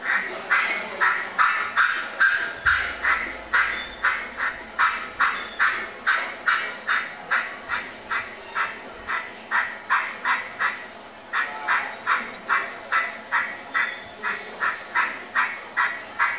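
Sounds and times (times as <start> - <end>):
jay calling in harsh raspy bursts: 0.0 - 16.3.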